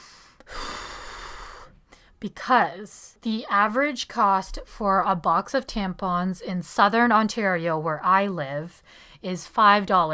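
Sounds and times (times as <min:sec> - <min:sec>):
deep breath: 0:00.0 - 0:02.2, 0:08.8 - 0:09.2
speech: 0:02.2 - 0:10.1.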